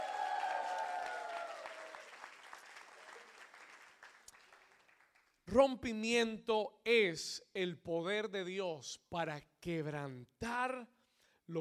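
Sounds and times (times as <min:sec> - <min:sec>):
excited cheering shouts: 0:00.0 - 0:02.0
audience applause: 0:00.0 - 0:05.3
speech: 0:05.5 - 0:11.5.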